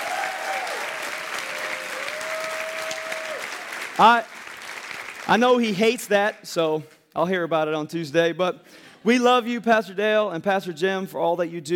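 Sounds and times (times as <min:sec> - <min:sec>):
audience applauding at a church service: 0:00.0 - 0:05.6
speech: 0:04.0 - 0:04.3, 0:05.3 - 0:11.7.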